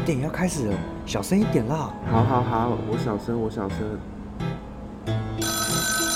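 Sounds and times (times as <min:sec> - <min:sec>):
speech: 0:00.1 - 0:04.5
mobile phone electronic ringtone in a cinema: 0:05.3 - 0:06.1.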